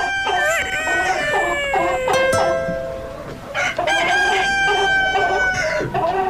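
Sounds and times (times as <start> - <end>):
rooster crowing: 0.0 - 2.8, 3.5 - 6.2.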